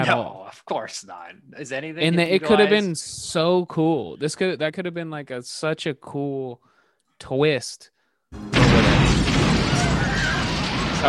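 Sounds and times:
speech: 0.0s - 9.3s
debris-like crackle after explosion: 8.5s - 11.0s
huge explosion in a movie scene: 8.5s - 11.0s.

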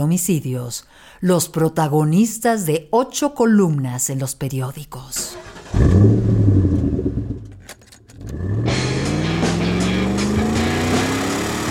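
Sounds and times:
speech: 0.0s - 6.5s
car engine revving and accelerating on a highway: 5.4s - 7.6s, 8.2s - 11.6s.

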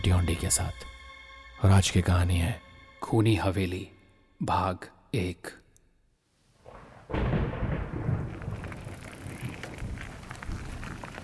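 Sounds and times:
speech: 0.0s - 0.9s, 1.6s - 5.6s
heavy rain downpour with crackling drops: 6.7s - 11.2s.

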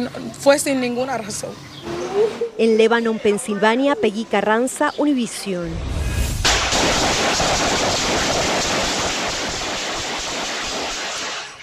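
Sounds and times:
speech: 0.0s - 6.0s, 6.8s - 9.1s
rapid gunfire in the street: 6.4s - 11.6s.

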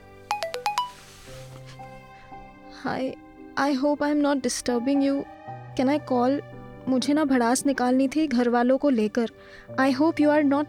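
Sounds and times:
phone message notification tone: 0.3s - 1.1s
speech: 2.8s - 10.6s.

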